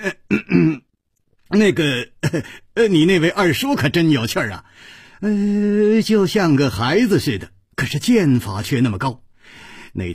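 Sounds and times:
storyteller's performed dry cough and throat clearing: 0.0s - 0.9s
speech: 1.5s - 10.1s.

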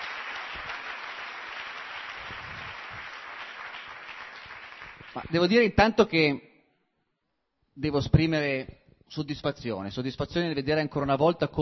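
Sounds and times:
audience applause welcoming a guest speaker at an educational lecture in Mondovì: 0.0s - 5.4s
speech: 5.2s - 6.5s, 7.8s - 11.5s.

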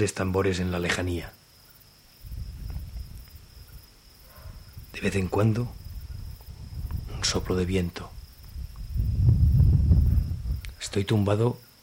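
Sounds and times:
speech: 0.0s - 1.4s, 5.0s - 5.8s, 7.2s - 8.1s, 10.8s - 11.8s
crickets chirping at night in Cadaqués: 0.0s - 11.8s
soft low rumble: 2.2s - 11.0s.

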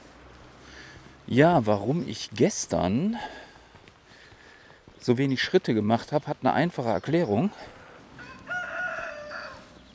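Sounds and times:
speech: 1.3s - 3.4s, 5.0s - 7.8s
rooster crowing: 8.2s - 9.8s.

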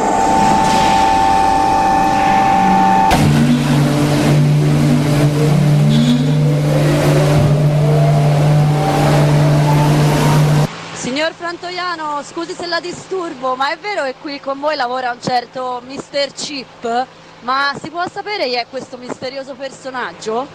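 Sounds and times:
olive mill machinery starting up with a loud mechanical hum: 0.0s - 10.7s
olive mill motors whining up to speed: 0.0s - 10.7s
speech: 12.4s - 20.5s.

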